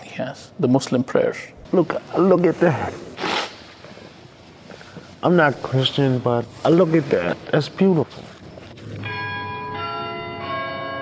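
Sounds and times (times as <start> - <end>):
speech: 0.2 - 3.2, 5.2 - 8.3
church bells ringing: 8.9 - 10.9.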